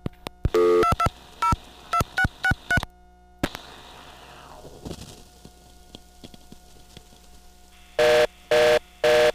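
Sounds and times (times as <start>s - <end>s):
fast-pulsing phone reorder tone: 0.5s - 2.9s, 7.8s - 9.3s
phone line hiss: 0.5s - 4.8s, 7.7s - 9.3s
touch-tone phone dialing beeps: 0.6s - 2.8s.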